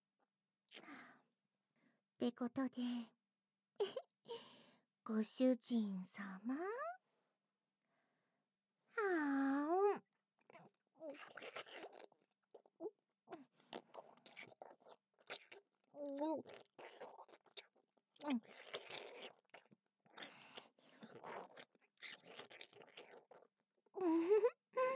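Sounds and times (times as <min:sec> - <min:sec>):
speech: 0:00.7 - 0:01.1, 0:02.2 - 0:03.2, 0:05.1 - 0:07.0, 0:09.0 - 0:09.8, 0:16.0 - 0:16.7, 0:18.2 - 0:18.8, 0:24.0 - 0:24.6
wet mouth sounds of a kinton sweet rolled around and chewed: 0:10.5 - 0:23.6.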